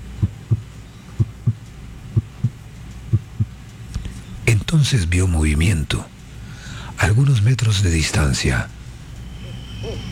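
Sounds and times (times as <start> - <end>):
heartbeat thumping in low lub-dub pairs: 0.0 - 3.6
speech: 4.7 - 6.1, 7.0 - 8.8.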